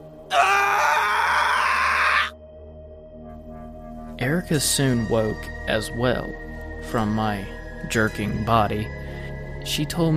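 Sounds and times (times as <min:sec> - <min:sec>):
speech: 0:00.3 - 0:00.5, 0:04.2 - 0:09.0, 0:09.6 - 0:10.1
man screaming: 0:00.3 - 0:02.4.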